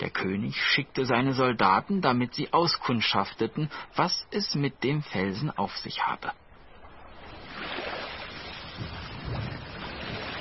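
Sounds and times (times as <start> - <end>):
speech: 0.2 - 6.4
gusts of wind: 6.3 - 10.3
sea waves washing around a boat moving on open water: 6.5 - 10.3
low thumps: 8.6 - 10.3.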